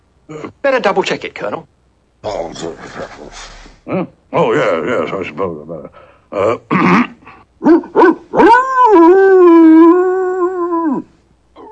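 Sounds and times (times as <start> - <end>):
speech: 0.3 - 7.9
dog howling: 7.6 - 11.0.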